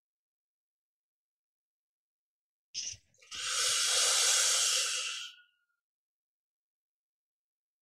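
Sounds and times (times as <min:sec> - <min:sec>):
sharp intake of breath in a guided breathing exercise: 0:03.3 - 0:05.5.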